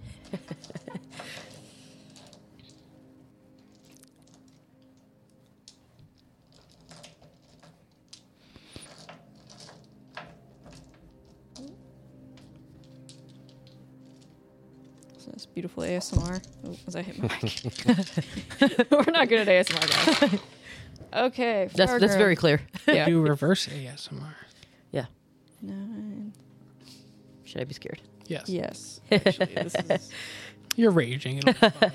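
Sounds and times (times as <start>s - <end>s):
laughter: 0.2s - 1.4s, 17.1s - 20.5s, 29.1s - 30.3s, 31.4s - 31.9s
many dice clattering and tumbling: 0.5s - 2.8s, 3.6s - 11.8s, 12.4s - 15.2s, 16.0s - 16.8s, 17.4s - 18.4s, 19.4s - 20.6s
speech: 15.6s - 25.8s, 27.6s - 31.9s.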